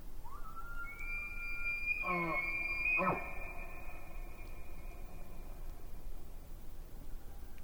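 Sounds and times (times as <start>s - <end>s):
elk bugling during the rut at Yellowstone Lake: 0.3s - 5.8s
steady low-frequency rumble: 0.7s - 6.5s.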